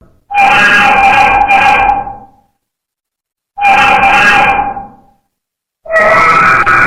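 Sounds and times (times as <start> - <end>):
cat screaming: 0.3 - 2.3, 3.6 - 5.0, 5.8 - 6.8.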